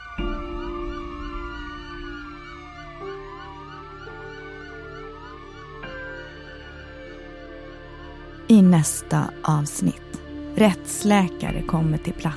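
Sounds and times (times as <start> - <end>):
emergency vehicle sirens wailing: 0.0 - 8.5
speech: 8.5 - 12.3.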